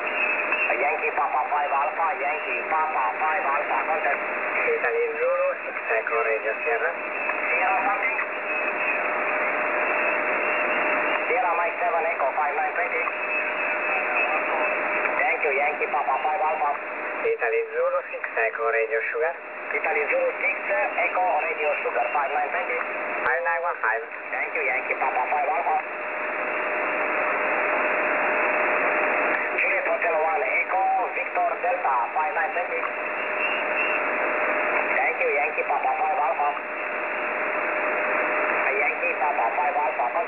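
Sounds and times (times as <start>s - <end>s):
shortwave radio signal on 21175.0kHz from a web SDR: 0.0s - 40.2s.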